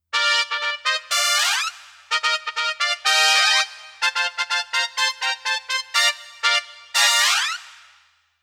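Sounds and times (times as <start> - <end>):
brass velocity glissando on a Casio PX-S3100 digital piano: 0.1 - 8.0.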